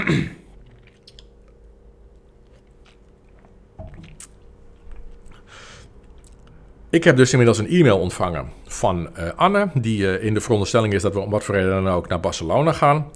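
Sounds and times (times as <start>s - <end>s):
speech: 0.1s - 0.4s, 6.9s - 13.1s
person sipping water: 0.4s - 1.6s, 2.2s - 6.6s
quiet exhale: 5.4s - 5.9s.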